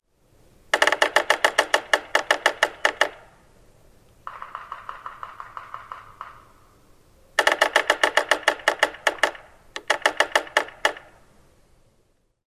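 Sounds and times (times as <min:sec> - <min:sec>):
Yellow-bellied Sapsucker drumming: 0:00.7 - 0:03.3, 0:04.2 - 0:06.8, 0:07.4 - 0:11.2.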